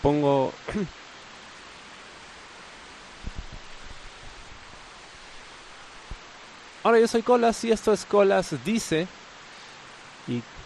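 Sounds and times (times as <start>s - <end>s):
speech: 0.0s - 1.0s, 6.8s - 9.2s, 10.3s - 10.6s
torrential rain pouring down in the jungle: 0.0s - 10.6s
dull low thumps: 3.2s - 4.8s.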